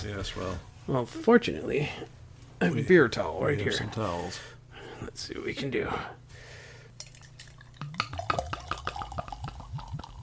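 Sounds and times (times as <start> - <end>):
speech: 0.0 - 6.2
low steady hum: 0.0 - 10.2
draft beer glugging from a growler into a glass: 7.0 - 10.2.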